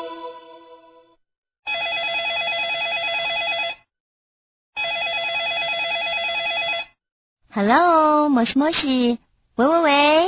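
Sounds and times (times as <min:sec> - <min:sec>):
telephone ringing with electronic ring bursts: 0:01.7 - 0:03.9, 0:04.8 - 0:07.0
speech: 0:07.7 - 0:10.2.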